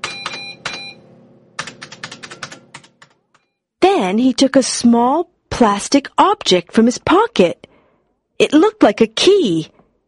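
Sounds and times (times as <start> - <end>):
typing a code on a computer keyboard: 0.0 - 0.9, 1.6 - 3.5
speech: 4.1 - 7.7, 8.4 - 9.8.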